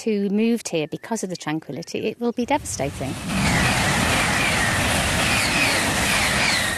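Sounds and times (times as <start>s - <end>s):
speech: 0.0s - 3.6s
high-speed train roaring past with a faint high whine: 2.4s - 6.7s.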